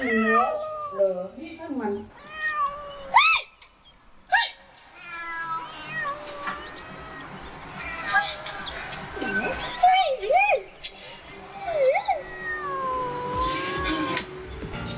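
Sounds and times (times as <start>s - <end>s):
cats meowing: 0.0s - 1.3s, 2.0s - 3.6s, 4.8s - 10.7s, 11.4s - 14.5s.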